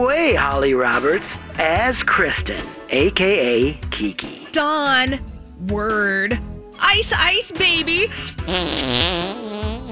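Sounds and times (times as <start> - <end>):
speech: 0.0 - 9.9
person blowing a long buzzy raspberry imitating a fart: 8.3 - 9.9.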